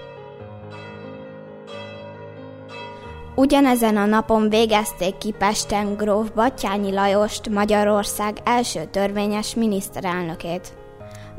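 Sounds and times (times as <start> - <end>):
church bells ringing together in all the churches of Arad, Hungary: 0.0 - 7.1
speech: 3.4 - 10.8.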